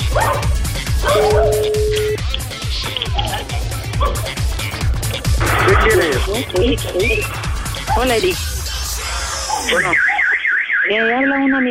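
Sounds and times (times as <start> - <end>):
dogs howling with whiny cries: 0.0 - 1.8, 3.0 - 4.5, 7.7 - 10.4
several dogs yapping and yipping: 0.0 - 6.0, 6.8 - 10.7
speech: 6.2 - 7.4, 8.0 - 8.6, 9.6 - 10.1, 10.9 - 11.7.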